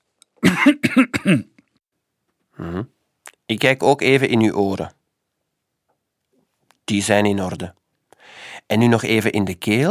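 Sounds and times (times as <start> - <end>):
man coughing: 0.4 - 1.5
speech: 0.6 - 1.5, 2.6 - 5.0, 6.9 - 9.8
short voiced throat sound: 2.5 - 3.0.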